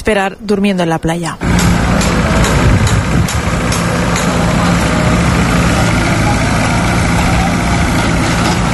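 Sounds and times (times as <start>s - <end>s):
speech: 0.0s - 2.7s
heavy machinery engine rumble from construction work at a port: 1.4s - 8.7s.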